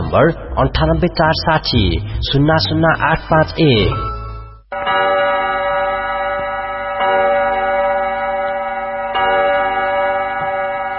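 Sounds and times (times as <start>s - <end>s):
Nepali radio time-check jingle: 0.0s - 4.6s
speech: 0.1s - 4.1s
chime-like accents: 3.7s - 10.9s.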